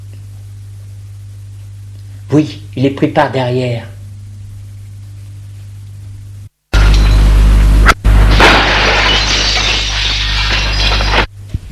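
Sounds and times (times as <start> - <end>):
steady low hum: 0.0 - 11.7
speech: 2.3 - 3.9
glass flask falling to the floor and shattering: 8.3 - 11.3.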